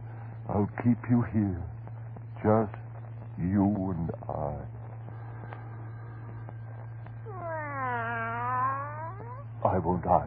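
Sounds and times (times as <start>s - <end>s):
steady low electrical hum: 0.0s - 10.2s
speech: 0.5s - 1.8s, 2.4s - 2.8s, 3.4s - 4.8s, 9.7s - 10.2s
cat yowling: 7.3s - 9.6s.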